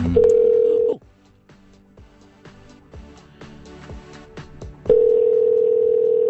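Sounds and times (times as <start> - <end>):
telephone call electronic ringback tone: 0.2 - 1.0, 4.9 - 6.2.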